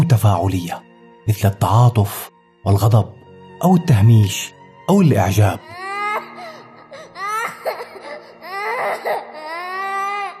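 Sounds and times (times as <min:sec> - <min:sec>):
speech: 0:00.1 - 0:05.8
infant crying in high-pitched wails: 0:05.4 - 0:10.3.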